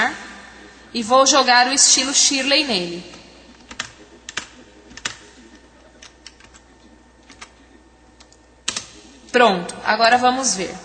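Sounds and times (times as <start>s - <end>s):
speech: 0.9s - 3.2s, 9.4s - 10.8s
typing a title on a computer keyboard: 3.7s - 5.2s, 6.0s - 6.6s, 7.2s - 7.6s.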